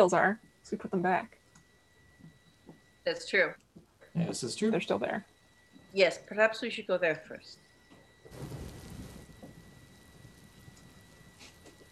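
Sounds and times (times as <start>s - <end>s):
speech: 0.0s - 1.4s, 3.0s - 3.6s, 4.2s - 5.3s, 5.9s - 7.6s
soft rumble of thunder in a video game: 8.3s - 11.3s
steady hiss of rainfall in a video game: 8.3s - 11.9s.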